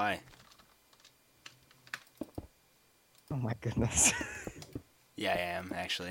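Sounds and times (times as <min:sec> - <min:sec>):
speech: 0:00.0 - 0:00.4, 0:03.3 - 0:06.0
keyboard and mouse clicking while gaming: 0:00.3 - 0:02.4.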